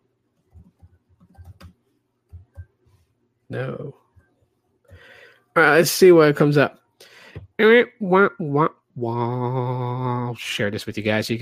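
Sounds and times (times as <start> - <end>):
typing on a computer keyboard: 0.4 - 2.7
speech: 3.5 - 4.0, 5.6 - 6.8, 7.6 - 11.4.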